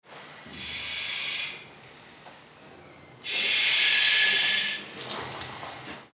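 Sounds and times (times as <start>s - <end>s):
breathing apparatus breathing air during fire brigade exercise: 0.5s - 2.3s, 3.2s - 4.9s.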